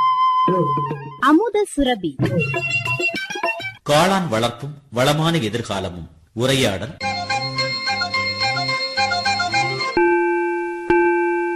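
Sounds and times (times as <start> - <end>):
speech: 0.5 - 3.3, 3.9 - 7.1
rhythmic plucked melodic music: 2.2 - 3.8, 7.0 - 10.3
doorbell chiming: 7.0 - 11.5.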